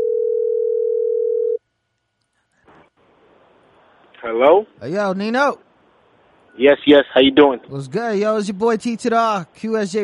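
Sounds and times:
outgoing phone call ringback tone: 0.0s - 1.6s
speech: 4.2s - 5.6s, 6.6s - 10.0s.

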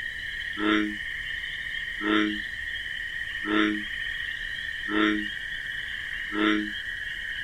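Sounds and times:
bullfrog croaking in a wetland at night: 0.0s - 7.4s
crickets chirping in a wetland at night: 0.0s - 7.4s.

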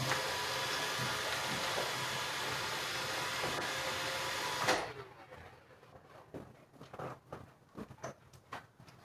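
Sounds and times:
robot vacuum cleaner whirring: 0.0s - 5.6s.

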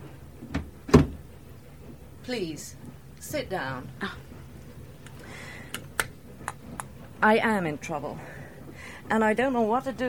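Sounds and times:
train compartment door swinging shut: 0.5s - 1.2s
speech: 2.3s - 4.3s, 7.2s - 8.4s, 9.1s - 10.0s.

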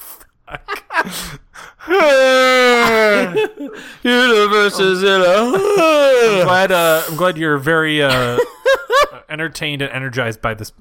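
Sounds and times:
laughter: 0.5s - 7.1s, 8.0s - 9.2s
quick breathy intakes: 1.0s - 7.4s
speech: 1.0s - 8.5s, 9.3s - 10.7s.

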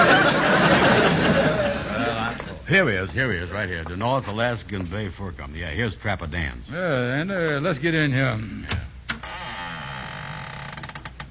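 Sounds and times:
laughter: 0.0s - 2.7s
speech: 2.7s - 8.8s
door creaking open: 8.6s - 11.2s.

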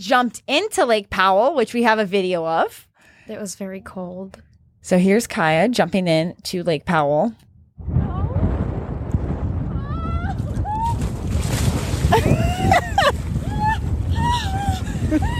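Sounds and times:
speech: 0.0s - 8.0s, 15.1s - 15.3s
wind buffeting the microphone outdoors at Lake Powell in Page: 7.5s - 15.3s.

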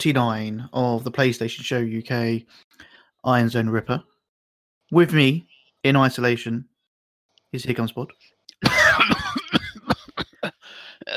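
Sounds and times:
speech: 0.0s - 4.1s, 4.9s - 6.7s, 7.5s - 8.8s
short harsh dry coughs: 8.6s - 11.1s.

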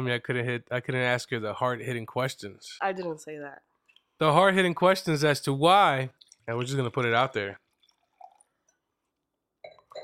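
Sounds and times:
speech: 0.0s - 7.6s
drink being poured into a glass: 5.9s - 10.0s.

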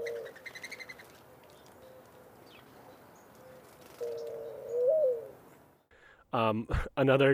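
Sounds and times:
mourning dove cooing song: 0.0s - 5.5s
speech: 6.3s - 7.3s.

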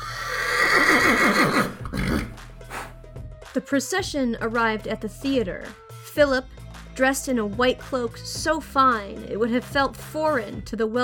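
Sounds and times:
horse tied by city gates whinnying: 0.0s - 2.4s
horse snorting and huffing: 0.0s - 3.0s
speech: 3.6s - 11.0s.

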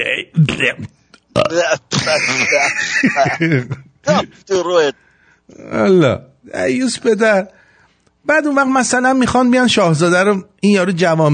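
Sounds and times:
man's voice imitating burps: 0.4s - 2.6s
speech: 0.4s - 7.6s, 8.2s - 11.3s
laughter: 1.9s - 4.3s.

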